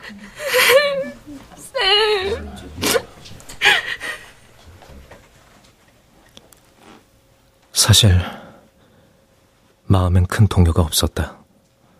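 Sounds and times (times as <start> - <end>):
person sobbing in a radio drama scene: 0.0 - 4.4
speech: 0.1 - 0.4, 8.0 - 8.4, 10.0 - 11.4.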